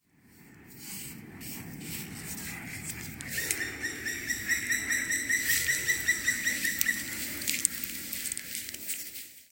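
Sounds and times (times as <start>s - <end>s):
black woodpecker bird song: 3.2s - 7.7s.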